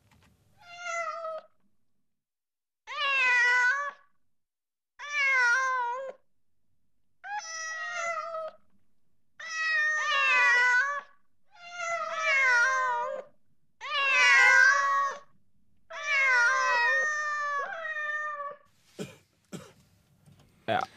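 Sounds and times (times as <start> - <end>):
cats meowing: 0.6 - 1.6, 2.9 - 4.1, 5.0 - 6.2, 7.2 - 8.8, 9.4 - 18.7.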